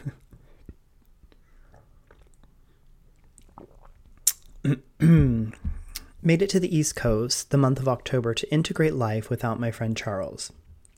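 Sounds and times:
slurping sips of coffee: 0:01.7 - 0:04.6
quiet mouth sounds: 0:03.5 - 0:06.2
speech: 0:04.7 - 0:05.6, 0:06.2 - 0:10.6.

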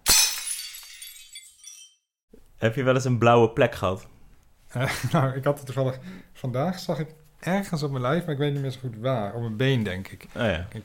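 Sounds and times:
blue glass knocked over in a cupboard shattering: 0:00.0 - 0:02.0
glass shards tinkling: 0:00.1 - 0:02.0
speech: 0:02.6 - 0:04.1, 0:04.7 - 0:10.8
laughter: 0:04.8 - 0:05.3.

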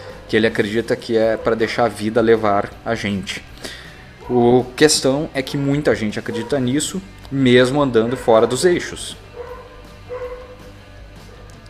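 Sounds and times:
speech: 0:00.3 - 0:09.2
dog barking: 0:01.2 - 0:01.8, 0:04.2 - 0:04.5, 0:06.2 - 0:06.8, 0:07.9 - 0:11.5.

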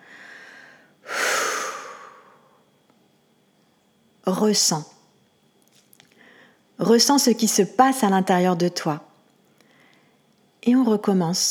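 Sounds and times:
faint steady hum: 0:00.0 - 0:11.4
forceful exhale through the mouth during a guided breathing exercise: 0:01.1 - 0:02.4
speech: 0:04.3 - 0:04.9, 0:06.9 - 0:09.1, 0:10.6 - 0:11.4.

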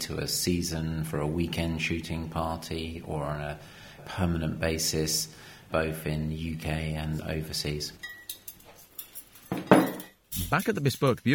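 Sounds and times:
speech: 0:00.0 - 0:08.2, 0:10.4 - 0:11.3
cutlery and wine glasses clinking while laid out on a table: 0:08.0 - 0:11.3.

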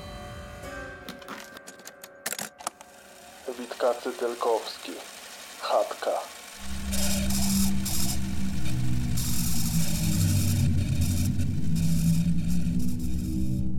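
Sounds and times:
car engine rumbling on a narrow mountain forest road: 0:02.7 - 0:13.6
car tire and road hiss on a narrow forest road: 0:02.8 - 0:13.6
speech: 0:03.5 - 0:06.7.

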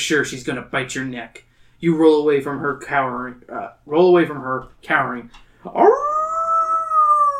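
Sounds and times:
speech: 0:00.0 - 0:06.1
person imitating a dog howling and yelping: 0:05.7 - 0:07.3.

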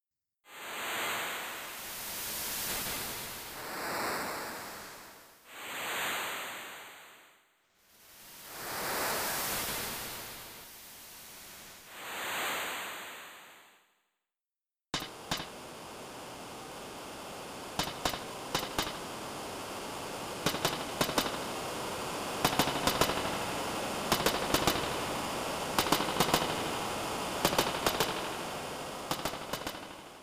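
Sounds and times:
synthesized hissing noise imitating lapping ocean waves: 0:00.5 - 0:13.8, 0:15.0 - 0:30.2
steady wash of static: 0:00.6 - 0:07.2, 0:07.9 - 0:13.6, 0:15.0 - 0:30.2
sharp clicks: 0:17.8 - 0:19.0, 0:20.4 - 0:21.4, 0:22.4 - 0:23.4, 0:24.1 - 0:25.0, 0:25.8 - 0:26.7, 0:27.4 - 0:28.4, 0:29.1 - 0:30.0.

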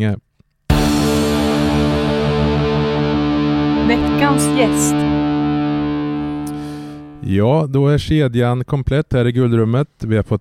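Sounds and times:
speech: 0:00.0 - 0:00.3, 0:03.9 - 0:05.2, 0:07.2 - 0:10.3
loud heavily distorted electric guitar chord in a short musical jingle: 0:00.7 - 0:07.3.

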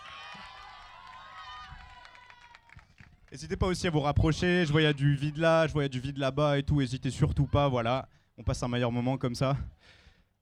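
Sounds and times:
large outdoor crowd cheering and whooping: 0:00.0 - 0:02.8
speech: 0:03.3 - 0:10.0.

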